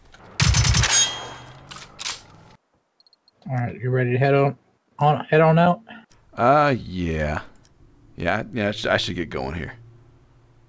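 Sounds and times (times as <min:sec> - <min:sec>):
machine gun fire in a video game: 0:00.3 - 0:01.7
speech: 0:03.5 - 0:07.5, 0:08.2 - 0:09.8.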